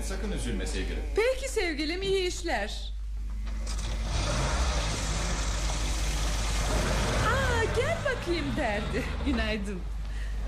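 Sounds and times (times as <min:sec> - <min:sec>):
speech: 0:00.1 - 0:03.0, 0:08.1 - 0:10.0
car engine being started and running: 0:03.5 - 0:10.0.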